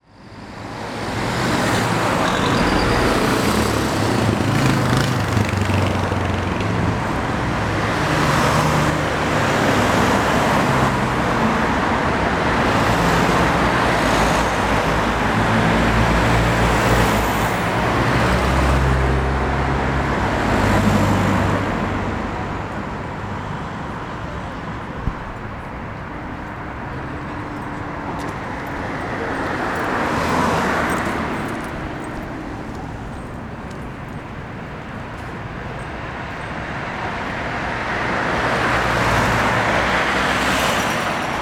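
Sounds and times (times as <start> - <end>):
busy road traffic in an urban environment: 0.0 - 41.4.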